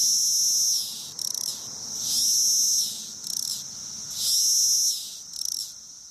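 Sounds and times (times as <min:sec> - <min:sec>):
chorus of cicadas mating song: 0:00.0 - 0:06.0.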